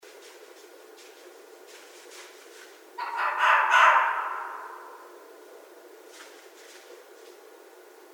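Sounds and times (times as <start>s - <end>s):
red fox hoarse cry: 3.0s - 5.0s.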